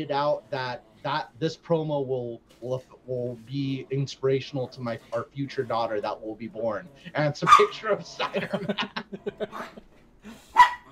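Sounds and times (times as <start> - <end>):
speech: 0.0 - 10.4
dogs barking: 7.4 - 8.0, 10.5 - 10.8
laughter: 7.7 - 10.0.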